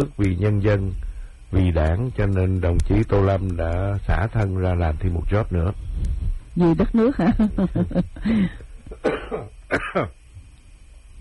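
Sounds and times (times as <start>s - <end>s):
speech: 0.0s - 10.2s
harsh coughs and throat-clearing: 8.9s - 10.2s.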